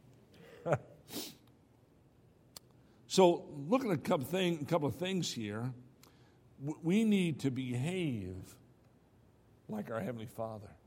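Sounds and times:
speech: 0.6s - 1.3s, 3.2s - 5.8s, 6.6s - 8.6s, 9.7s - 10.8s
person sneezing: 0.6s - 1.4s.

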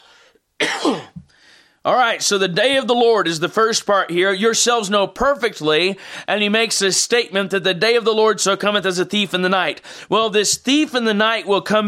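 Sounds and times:
raspy cough and throat clearing: 0.6s - 1.3s
speech: 0.8s - 1.2s, 1.8s - 11.8s.

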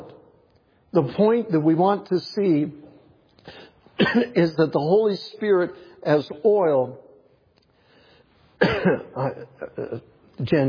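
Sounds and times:
speech: 0.9s - 2.8s, 3.4s - 7.0s, 8.8s - 10.6s
person coughing from a tickle in the throat: 4.0s - 4.4s, 8.6s - 10.2s.

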